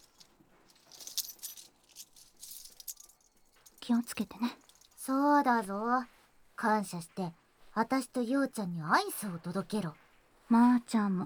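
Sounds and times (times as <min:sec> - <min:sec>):
keys jangling: 0:00.0 - 0:05.0
speech: 0:03.9 - 0:11.2.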